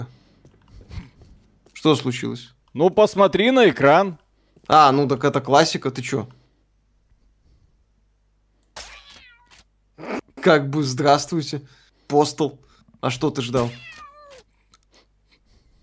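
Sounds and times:
speech: 1.8s - 6.4s, 10.4s - 14.0s
cat meowing: 8.8s - 9.6s, 13.6s - 14.5s.

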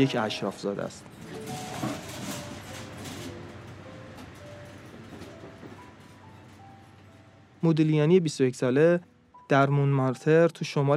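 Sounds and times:
speech: 0.0s - 1.7s, 7.6s - 10.9s
train rolling steadily along the rails with a continuous rumbling roar: 0.0s - 7.1s.

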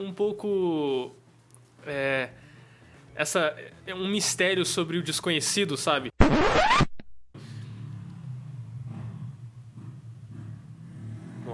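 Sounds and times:
speech: 0.0s - 1.2s, 1.8s - 2.5s, 3.2s - 6.6s
motorcycle engine revving as the bike passes outside: 7.4s - 11.5s.

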